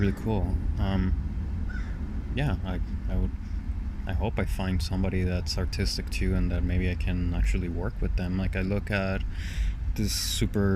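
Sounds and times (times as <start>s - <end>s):
speech: 0.0s - 3.4s, 4.0s - 10.7s
steady low rumble: 0.0s - 10.7s
crow cawing outside: 1.7s - 2.0s.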